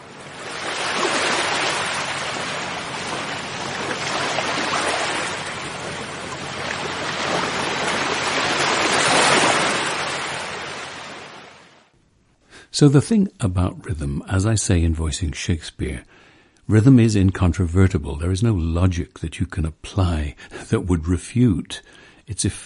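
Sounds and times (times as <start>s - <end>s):
waves breaking on a seashore: 0.0s - 11.9s
speech: 12.8s - 22.6s.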